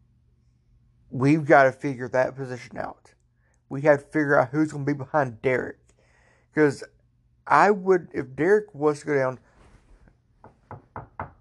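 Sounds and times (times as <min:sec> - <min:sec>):
speech: 0:01.1 - 0:05.8, 0:06.6 - 0:06.9, 0:07.5 - 0:09.5
knocking on wood: 0:10.4 - 0:11.3.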